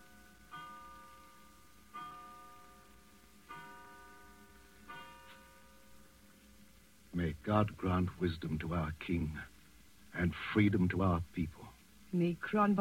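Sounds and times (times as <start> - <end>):
clock chiming the hour with bell strikes: 0.1 - 2.9, 3.5 - 5.9
speech: 7.3 - 9.5, 10.2 - 12.7.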